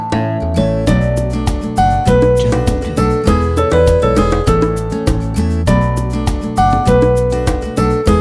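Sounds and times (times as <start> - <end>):
happy kids logo jingle: 0.2 - 8.1.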